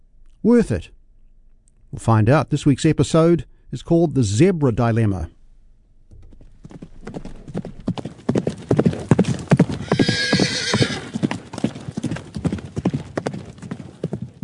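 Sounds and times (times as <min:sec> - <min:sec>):
speech: 0:00.4 - 0:01.0, 0:01.9 - 0:05.4
horse hoofbeats clip-clopping: 0:06.1 - 0:14.4
horse whinny: 0:09.8 - 0:11.2.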